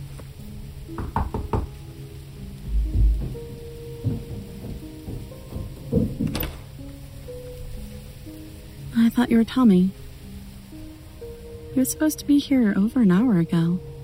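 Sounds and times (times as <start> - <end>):
knocking on a door: 0.9 - 1.8, 2.6 - 6.7
dull thuds: 2.5 - 6.9
speech: 9.2 - 10.0, 11.8 - 13.9.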